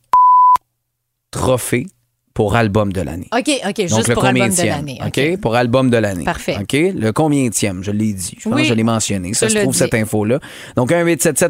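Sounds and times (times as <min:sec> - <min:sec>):
censor beep covering a word: 0:00.1 - 0:00.6
speech: 0:01.5 - 0:11.4.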